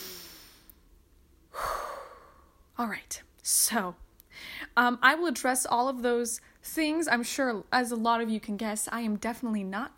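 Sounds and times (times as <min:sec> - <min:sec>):
deep collective breath: 0:01.5 - 0:02.6
speech: 0:02.8 - 0:09.9.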